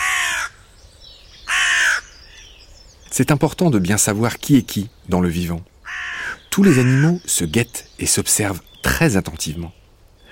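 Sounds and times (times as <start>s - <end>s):
common raven harsh call: 0.0s - 0.6s, 1.5s - 2.4s, 5.8s - 7.3s
speech: 3.2s - 5.7s, 6.6s - 9.8s.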